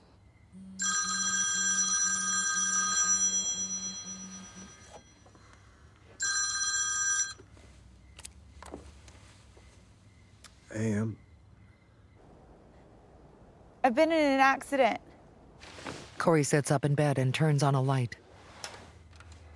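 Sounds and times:
telephone ringing with a bright trilling bell after a call is dialed: 0.6 - 7.8
speech: 10.8 - 11.2, 13.9 - 15.0, 16.2 - 18.2.

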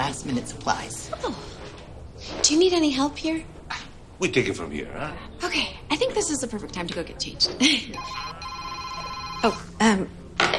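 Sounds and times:
speech: 0.2 - 3.5, 4.2 - 8.4, 9.4 - 10.2
telephone ringing with a bright electronic tone: 8.0 - 9.8.

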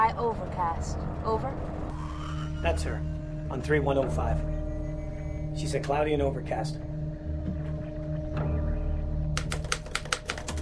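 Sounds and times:
steady low hum: 0.0 - 9.4
speech: 0.1 - 4.6, 5.6 - 6.9
typewriter keys clacking as a sailor types a report: 9.4 - 10.6.

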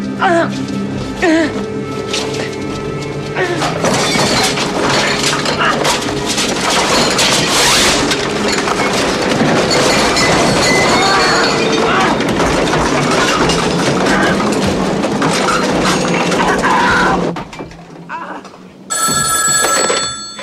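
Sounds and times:
speech: 0.2 - 1.7
objects on a desk crashing and shattering: 2.0 - 20.4.

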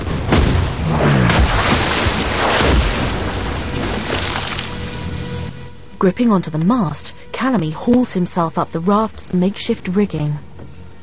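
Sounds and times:
heavy cannon fire hitting the sea water: 0.0 - 4.9
splashes of sea water from cannon impacts: 0.0 - 5.6
speech: 6.0 - 10.5.

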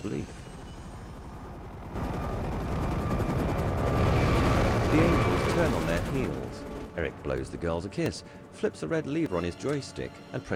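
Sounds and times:
speech: 0.0 - 0.5, 5.6 - 10.5
military helicopter engine roar: 0.3 - 8.7
dull green military helicopter rotors chopping as it rises from below cliffs: 1.2 - 9.2.

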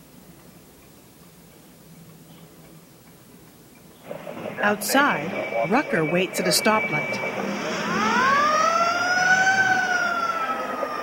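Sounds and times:
city emergency siren wailing: 4.0 - 11.0
speech: 4.6 - 7.5.

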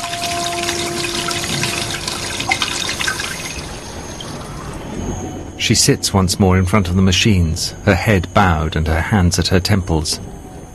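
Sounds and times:
water running from a tap into a sink over hands being washed: 0.0 - 4.5
speech: 5.6 - 10.3.

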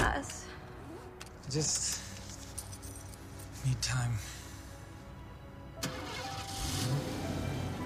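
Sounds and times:
speech: 1.5 - 2.0, 3.6 - 4.3
car engine starting: 5.8 - 7.8.

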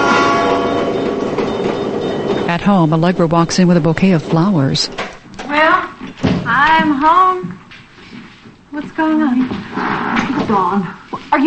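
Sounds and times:
train rumbling along railroad tracks at night: 0.0 - 5.0
speech: 2.5 - 5.7, 6.6 - 7.5, 8.8 - 11.4.

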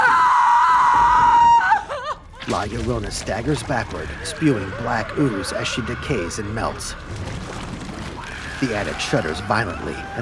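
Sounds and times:
woman screaming: 0.0 - 2.2
speech: 2.5 - 7.6, 8.6 - 10.2.

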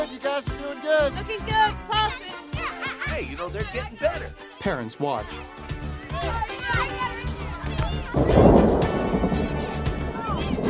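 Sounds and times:
speech: 0.1 - 1.9, 3.4 - 7.1
children chattering and calling on a school field: 1.2 - 10.6
laughter: 2.3 - 3.6
deep rumble of thunder: 8.0 - 10.6
soft hiss of rain beginning to fall: 8.1 - 10.6.

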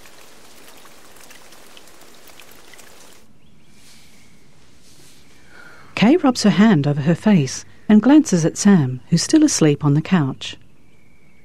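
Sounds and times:
rain pattering on the cover of an in-ground pool on a wet morning: 0.0 - 3.3
speech: 6.0 - 10.6.

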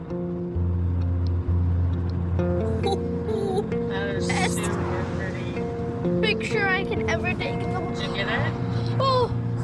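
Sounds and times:
low engine drone inside a moving car: 0.0 - 9.6
road hum: 0.0 - 9.6.

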